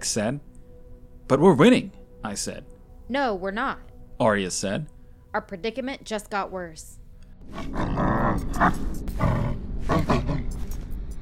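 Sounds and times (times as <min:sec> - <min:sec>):
speech: 0:00.0 - 0:00.5, 0:01.3 - 0:10.4
dog growling: 0:07.5 - 0:10.6.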